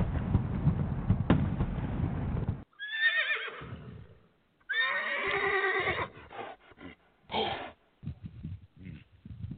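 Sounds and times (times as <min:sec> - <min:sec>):
rough rumbling noise: 0:00.0 - 0:02.7
horses neighing and whinnying: 0:02.7 - 0:07.8
horses snorting whinnies: 0:05.5 - 0:09.5.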